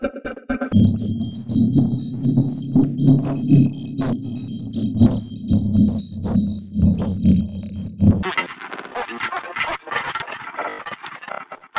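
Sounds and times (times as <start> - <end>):
circuit bent loops: 0.7 - 11.7.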